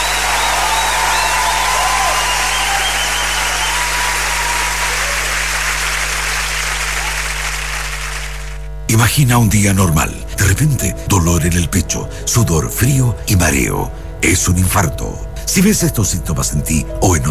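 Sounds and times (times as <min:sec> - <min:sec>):
sustained applause from a sizable audience: 0:00.0 - 0:08.7
speech: 0:09.0 - 0:17.2.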